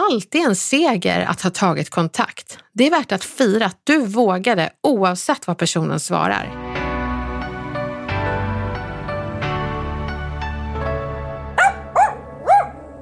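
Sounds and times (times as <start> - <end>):
speech: 0.1 - 6.9
mellow instrumental music with piano-like notes: 6.5 - 12.9
dog barking loudly: 11.6 - 12.9.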